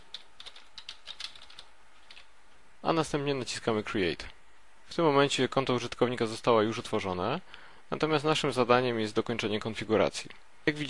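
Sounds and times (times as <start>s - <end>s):
computer keyboard typing a new user name: 0.0s - 2.3s
speech: 2.8s - 10.8s.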